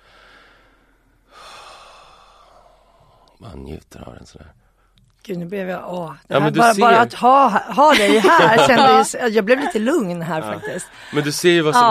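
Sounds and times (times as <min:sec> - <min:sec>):
deep inhale: 0:00.0 - 0:03.4
slow breathy exhale: 0:00.0 - 0:03.4
speech: 0:03.4 - 0:04.6, 0:05.3 - 0:11.8
laughter: 0:07.7 - 0:11.8.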